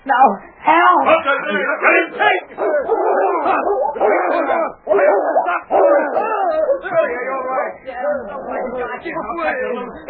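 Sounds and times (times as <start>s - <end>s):
speech: 0.1s - 4.7s
dog barking and snarling during an attack: 2.1s - 8.8s.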